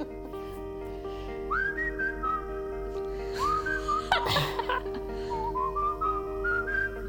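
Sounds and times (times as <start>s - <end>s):
laughter: 0.0s - 0.4s, 3.4s - 5.1s
steady musical backing: 0.0s - 7.0s
whistled military-style marching tune: 1.4s - 2.8s, 3.4s - 4.2s, 5.2s - 7.0s.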